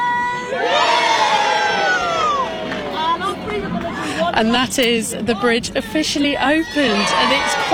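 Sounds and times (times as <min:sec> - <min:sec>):
large group of schoolchildren cheering and shouting at a bridge opening: 0:00.0 - 0:03.7, 0:06.6 - 0:07.7
speech: 0:04.4 - 0:07.7.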